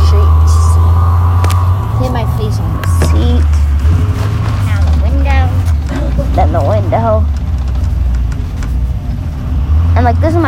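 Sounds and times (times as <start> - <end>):
low rumble of an engine inside a moving bus: 0.0 - 10.4
road noise from inside a moving bus: 0.0 - 10.4
faint light rattles: 3.0 - 9.4.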